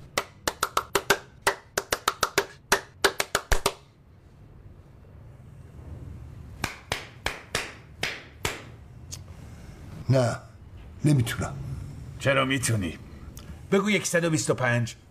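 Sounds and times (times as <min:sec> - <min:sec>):
hands clapping: 0:00.0 - 0:03.9, 0:06.6 - 0:08.7
speech: 0:10.1 - 0:13.0, 0:13.7 - 0:15.0.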